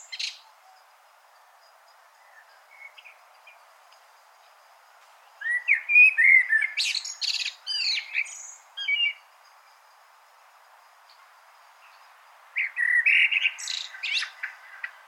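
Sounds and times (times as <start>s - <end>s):
common blackbird Turdus merula fluted warbling song: 0.0s - 0.8s, 5.4s - 9.2s, 12.6s - 15.0s.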